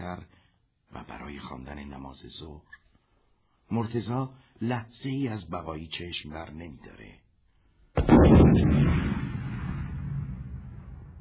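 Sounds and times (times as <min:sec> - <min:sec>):
speech: 0:01.5 - 0:02.8, 0:03.7 - 0:07.2
loud explosion with rumbling roar: 0:08.0 - 0:11.1.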